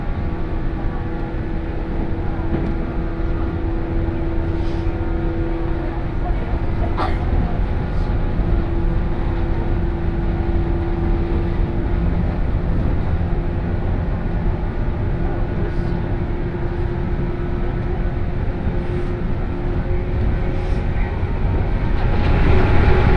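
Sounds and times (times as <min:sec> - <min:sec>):
117 series train interior rumble in a tunnel: 0:00.0 - 0:23.1.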